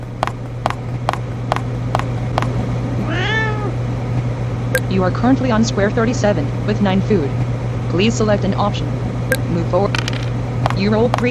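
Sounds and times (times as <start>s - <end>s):
sharp ticks: 0.0s - 2.6s, 10.7s - 11.2s
low electrical hum: 0.0s - 11.2s
cat meowing: 3.0s - 3.8s
speech: 5.0s - 10.0s, 10.8s - 11.2s.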